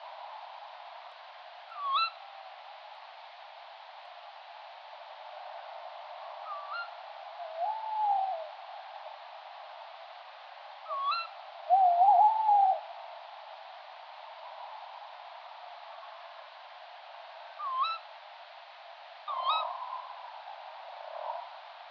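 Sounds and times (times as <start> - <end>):
tawny owl Strix aluco calling: 1.7 - 2.2, 6.4 - 8.5, 10.9 - 12.8, 17.6 - 18.0, 19.3 - 20.2.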